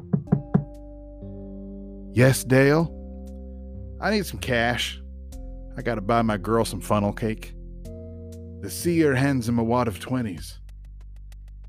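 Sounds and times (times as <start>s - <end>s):
knocking on a car window: 0.0s - 0.8s
speech: 2.2s - 3.0s, 4.0s - 5.0s, 5.8s - 7.6s, 8.6s - 10.6s.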